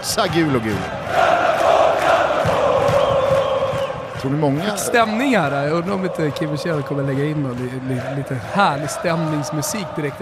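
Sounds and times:
large crowd roaring and cheering: 0.0s - 10.1s
speech: 0.2s - 1.0s, 4.2s - 10.1s
whistles from a crowd: 2.9s - 4.2s.

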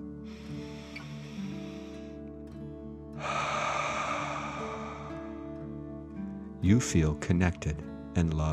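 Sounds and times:
deep breathing during a guided breathing exercise: 0.2s - 2.4s, 3.2s - 6.6s
speech: 6.6s - 8.5s.

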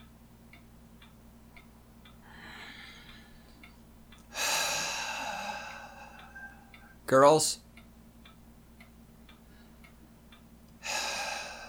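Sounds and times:
deep breath in: 2.2s - 3.6s, 4.3s - 6.7s, 10.8s - 11.6s
speech: 7.1s - 7.6s.

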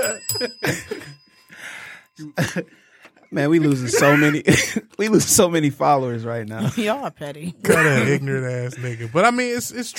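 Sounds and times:
bell ringing: 0.0s - 4.3s
speech: 0.1s - 1.0s, 2.2s - 9.9s.

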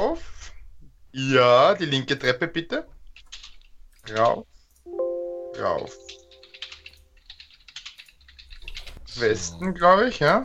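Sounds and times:
speech: 0.0s - 0.4s, 1.2s - 3.3s, 4.1s - 4.5s, 5.6s - 6.2s, 9.2s - 10.4s
typing on a computer keyboard: 3.2s - 4.4s, 6.1s - 9.0s
low steady hum: 4.9s - 7.1s.

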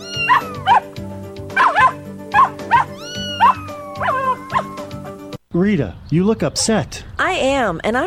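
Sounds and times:
neighbor's dog tied up outside barking: 0.2s - 0.9s, 1.6s - 4.8s
speech: 5.6s - 8.0s.

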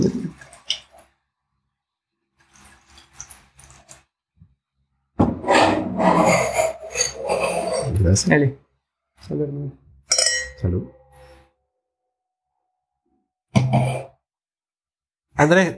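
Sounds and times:
cork being worked out of a wine bottle: 5.5s - 8.0s
speech: 8.0s - 8.6s, 9.2s - 9.8s, 10.6s - 11.0s, 13.7s - 14.0s, 15.4s - 15.7s.

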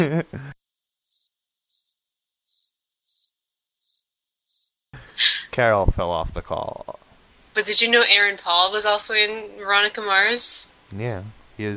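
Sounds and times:
speech: 0.0s - 0.6s, 5.2s - 7.0s, 7.6s - 11.7s
cricket chirping sound effect: 1.0s - 4.8s.

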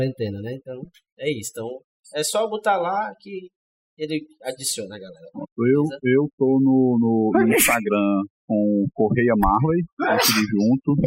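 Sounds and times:
speech: 0.0s - 11.0s
sneeze: 7.4s - 7.8s, 10.0s - 10.6s.

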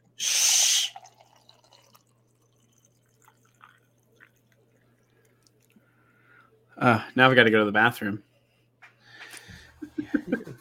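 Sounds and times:
coffee pouring from a French press: 0.8s - 5.8s
speech: 6.8s - 8.3s
laughter: 9.8s - 10.6s.

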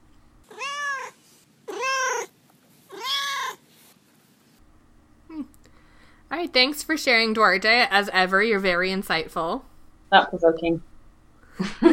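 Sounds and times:
cat meowing: 0.5s - 2.3s, 2.9s - 3.6s
speech: 6.4s - 10.9s.

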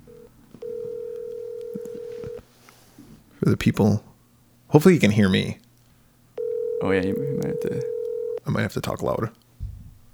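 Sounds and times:
phone dialing out on speakerphone: 0.0s - 2.5s, 6.4s - 8.5s
faint clicks: 0.0s - 2.8s
speech: 3.5s - 4.1s, 4.7s - 5.7s, 6.8s - 9.4s.

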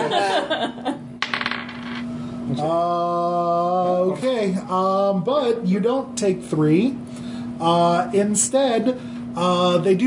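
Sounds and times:
laughter: 0.0s - 1.0s
dice clattering on a table during a tabletop game: 1.2s - 2.0s
speech: 2.5s - 3.2s, 4.0s - 7.0s, 7.6s - 10.0s.

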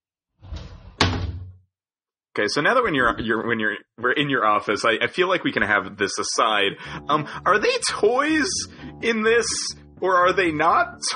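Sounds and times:
office door creaking and thudding shut: 0.4s - 1.6s
speech: 2.4s - 11.1s.

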